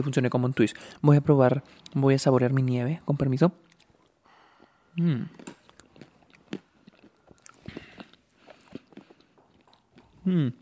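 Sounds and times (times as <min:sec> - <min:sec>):
speech: 0:00.0 - 0:03.7, 0:05.0 - 0:05.6, 0:10.3 - 0:10.6
chewing a crunch ice cream bar with crunchy chocolate bits: 0:03.6 - 0:10.6
wet mouth sounds: 0:03.6 - 0:10.6.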